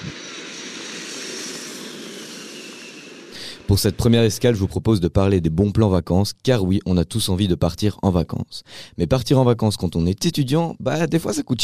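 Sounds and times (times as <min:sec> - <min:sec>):
airplane engine roar with faint high whine: 0:00.0 - 0:04.8
speech: 0:03.7 - 0:11.6.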